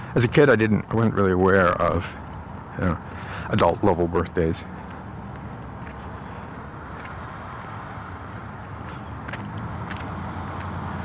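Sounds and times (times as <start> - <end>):
street traffic rumbling at a street corner: 0.0 - 11.0
speech: 0.2 - 2.2, 2.8 - 4.8.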